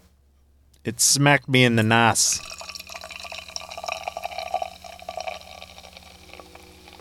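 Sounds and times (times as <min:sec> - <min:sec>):
speech: 0:00.8 - 0:02.5
beer pouring into a glass with fizzing: 0:02.4 - 0:06.9.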